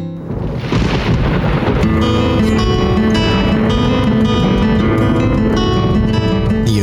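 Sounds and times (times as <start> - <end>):
rumbling thunder: 0.2 - 6.8
steady rain: 0.2 - 6.8
sustained musical tones: 1.3 - 6.8.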